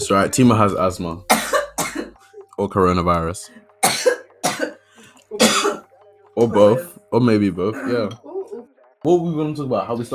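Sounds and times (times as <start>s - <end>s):
speech: 0.0s - 1.3s, 2.6s - 4.1s, 6.4s - 8.3s, 9.0s - 10.1s
person coughing: 1.3s - 2.2s, 3.8s - 5.9s, 7.7s - 8.2s.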